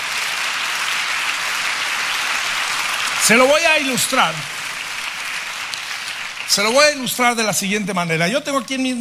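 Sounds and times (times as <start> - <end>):
large crowd applauding: 0.0 - 8.3
speech: 3.2 - 4.6, 6.5 - 8.9.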